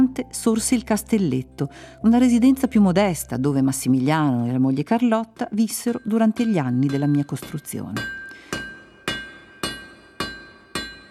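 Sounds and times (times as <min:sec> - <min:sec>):
speech: 0:00.2 - 0:08.2
hammer blows on a chisel during a building's construction: 0:05.4 - 0:11.0.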